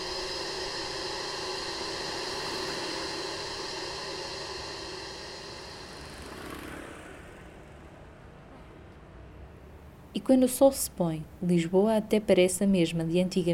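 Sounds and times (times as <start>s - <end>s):
steady droning engine hum: 0.0s - 8.6s
traffic noise on a busy city avenue: 0.0s - 10.2s
speech: 10.2s - 13.5s.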